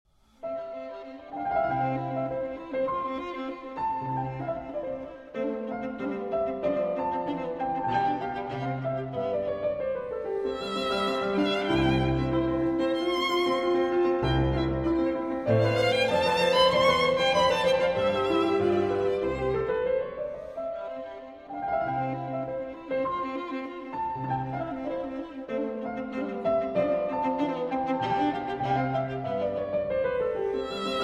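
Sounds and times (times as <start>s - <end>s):
violin sonata in C major: 0.3s - 31.0s.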